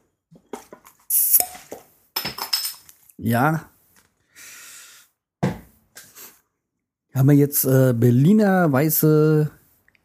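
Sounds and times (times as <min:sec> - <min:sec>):
gas hissing from an opened glass beer bottle: 0:01.1 - 0:01.5
glass beer bottle clinks and clicks: 0:02.2 - 0:02.8
speech: 0:03.2 - 0:03.7, 0:07.2 - 0:10.0.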